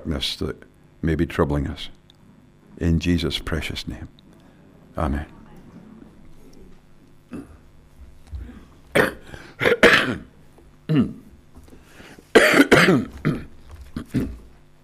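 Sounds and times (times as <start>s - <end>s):
speech: 0.0s - 2.0s, 2.8s - 4.2s, 5.0s - 5.4s, 10.9s - 11.2s, 12.9s - 13.3s, 14.1s - 14.4s
person coughing: 7.3s - 7.6s, 8.4s - 10.3s, 10.9s - 11.3s, 12.3s - 14.5s.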